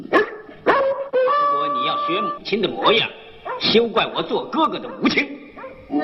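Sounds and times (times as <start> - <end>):
dog bark: 0.1 - 1.2, 3.4 - 5.9
speech: 2.3 - 5.4.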